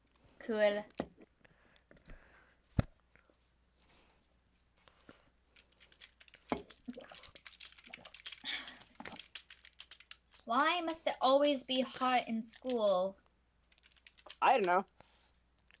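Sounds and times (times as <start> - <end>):
speech: 0.5 - 1.1, 10.5 - 13.2, 14.4 - 15.0
typing on a computer keyboard while scripting: 5.6 - 10.4, 13.6 - 14.9.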